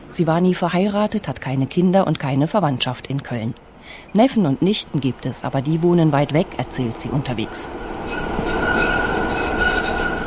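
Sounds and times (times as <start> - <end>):
speech: 0.1 - 8.9
Cologne city tram wheel squeal turning into a curve: 7.3 - 10.2.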